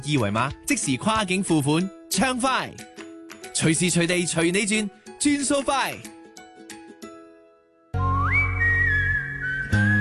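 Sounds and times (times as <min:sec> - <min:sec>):
speech: 0:00.0 - 0:02.9, 0:03.6 - 0:06.1
person whistling a tune: 0:08.0 - 0:10.0.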